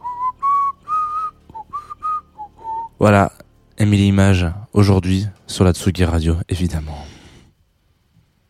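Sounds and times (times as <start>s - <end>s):
person whistling a short simple melody: 0.0s - 3.0s
speech: 3.0s - 7.1s.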